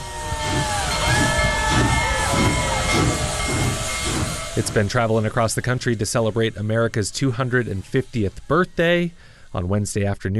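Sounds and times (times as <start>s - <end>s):
faint steam locomotive bell ringing: 0.0s - 7.8s
steam locomotive releasing steam at Greeley's 10th Street crossing: 0.0s - 10.3s
speech: 4.6s - 10.3s.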